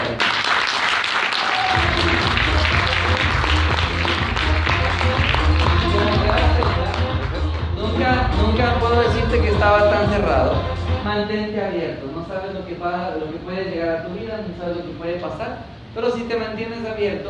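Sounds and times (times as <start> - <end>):
loud sustained audience applause: 0.0 - 7.6
crowd noise: 1.3 - 11.0
steady low rhythmic thumping: 1.8 - 11.1
speech: 11.1 - 17.2.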